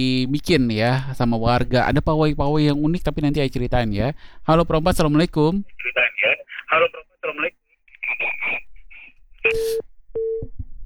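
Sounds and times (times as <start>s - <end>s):
speech: 0.0s - 8.7s, 9.4s - 10.6s
telephone tones signalling an incoming call: 5.8s - 10.4s.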